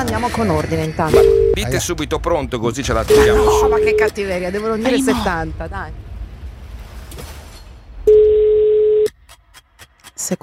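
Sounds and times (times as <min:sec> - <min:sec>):
speech: 0:00.0 - 0:06.0, 0:10.3 - 0:10.4
telephone ringback tone: 0:01.2 - 0:01.6, 0:03.5 - 0:04.1, 0:08.1 - 0:09.1.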